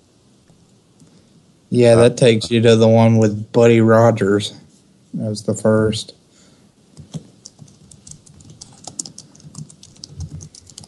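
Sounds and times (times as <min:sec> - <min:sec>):
speech: 0:01.7 - 0:04.6, 0:05.2 - 0:06.2
typing on a computer keyboard: 0:07.0 - 0:10.8.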